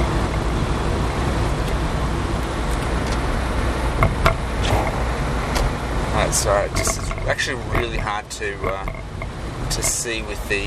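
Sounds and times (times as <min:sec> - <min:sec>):
car interior road noise while driving: 0:00.0 - 0:10.6
speech: 0:06.4 - 0:09.1, 0:09.7 - 0:10.6
clicks and knocks inside a car: 0:06.8 - 0:10.0.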